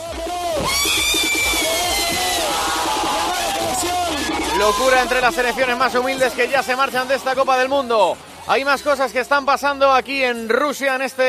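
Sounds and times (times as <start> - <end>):
large crowd of fans cheering to welcome Peru's national football team at the airport in Lima: 0.0 - 8.2
speech: 4.6 - 11.2.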